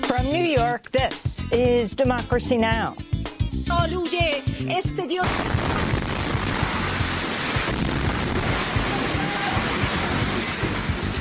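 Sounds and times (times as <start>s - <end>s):
speech: 0.1s - 5.7s
crackling debris noise: 5.2s - 11.1s
loud explosion during live TV broadcast: 5.2s - 11.1s.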